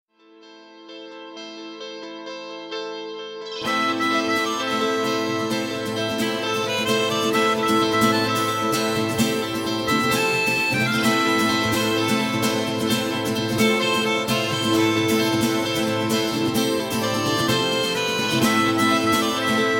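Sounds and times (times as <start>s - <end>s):
harmonica: 3.5s - 19.7s.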